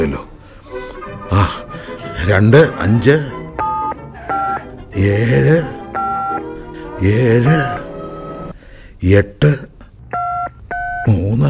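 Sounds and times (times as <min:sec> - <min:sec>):
person talking: 0:01.2 - 0:03.4, 0:04.9 - 0:05.8, 0:07.0 - 0:07.9, 0:09.0 - 0:09.9, 0:11.0 - 0:11.4
telephone keypad tones from a number being dialed: 0:03.6 - 0:04.6, 0:05.9 - 0:06.4, 0:10.2 - 0:11.4.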